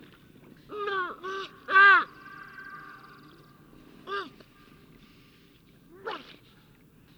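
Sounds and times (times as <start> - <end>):
harbor seal pup barking: 0.7 - 3.4, 5.9 - 6.4.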